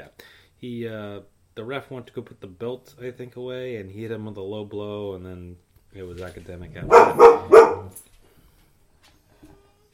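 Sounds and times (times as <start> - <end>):
speech: 0.6 - 8.1
loud dog barking: 6.8 - 8.0.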